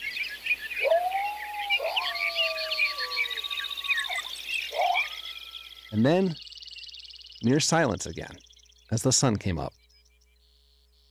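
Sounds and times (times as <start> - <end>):
dawn chorus of birds chirping and trilling: 0.0 - 11.0
coyotes howling at dawn: 0.6 - 6.5
speech: 5.9 - 6.4, 7.4 - 9.8.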